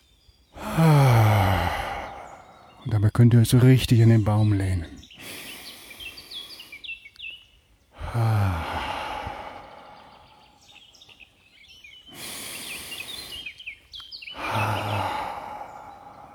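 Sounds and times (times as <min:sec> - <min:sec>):
small birds chirping and trilling outdoors: 0:00.0 - 0:16.3
person letting out long breathy sighs: 0:00.6 - 0:02.8, 0:08.0 - 0:10.6, 0:14.4 - 0:16.3
speech: 0:02.9 - 0:05.4, 0:08.1 - 0:08.4.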